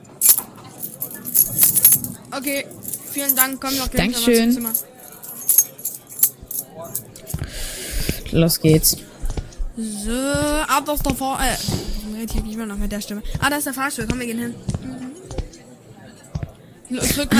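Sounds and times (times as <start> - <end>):
keys jingling and clinking as they are handed over: 0.1 - 8.2
speech: 2.4 - 5.0, 8.3 - 9.1, 9.8 - 14.8, 16.9 - 17.3.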